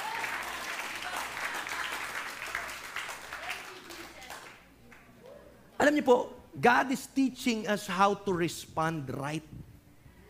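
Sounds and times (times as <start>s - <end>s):
church congregation clapping during a worship service: 0.0s - 5.1s
speech: 5.8s - 9.6s.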